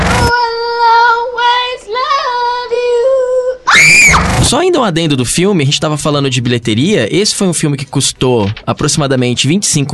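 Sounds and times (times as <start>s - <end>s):
little girl singing into microphone: 0.1s - 3.8s
little girl screaming into microphone: 3.6s - 4.4s
speech: 4.5s - 9.9s.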